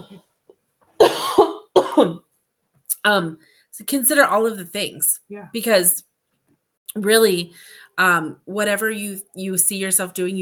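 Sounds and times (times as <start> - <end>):
person coughing: 1.0 - 2.2
speech: 2.0 - 2.3, 3.0 - 6.1, 6.9 - 10.4.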